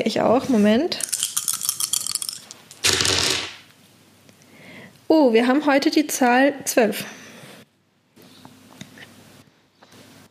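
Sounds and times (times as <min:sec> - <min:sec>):
speech: 0:00.0 - 0:01.1, 0:05.1 - 0:07.2
dice rattling: 0:01.0 - 0:03.6.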